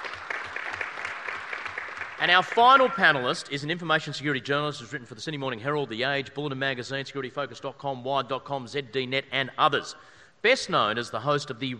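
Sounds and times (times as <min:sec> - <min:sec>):
crowd applauding: 0:00.0 - 0:03.4
speech: 0:02.2 - 0:11.7.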